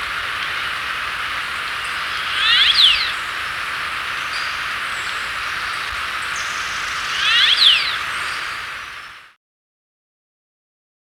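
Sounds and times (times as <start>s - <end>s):
turquoise jay making grating buzzy calls in Ecuador: 0.0s - 8.6s
steady hissing noise: 0.0s - 9.4s.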